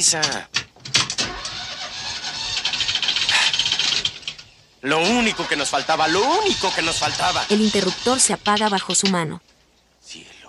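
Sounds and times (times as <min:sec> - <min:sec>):
speech: 0:00.0 - 0:00.6, 0:04.8 - 0:09.5, 0:10.1 - 0:10.4
car engine cranking and starting: 0:01.0 - 0:09.0.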